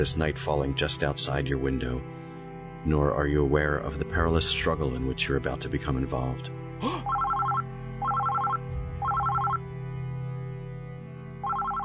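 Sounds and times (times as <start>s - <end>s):
speech: 0.0s - 2.2s, 2.8s - 7.1s
office telephone ringing with electronic trilling: 7.1s - 9.6s, 11.4s - 11.8s.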